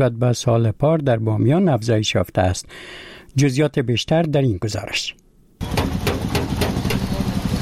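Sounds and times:
speech: 0:00.0 - 0:05.8
hammer striking metal of a car in a repair workshop: 0:05.6 - 0:07.2
low engine rumble in a workshop: 0:05.6 - 0:07.6.

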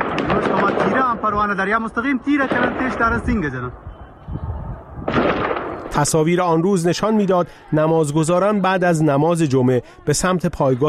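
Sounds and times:
rapid continuous gunfire: 0:00.0 - 0:01.3, 0:02.4 - 0:03.1, 0:05.1 - 0:05.9
speech: 0:01.3 - 0:03.9, 0:06.0 - 0:10.8.

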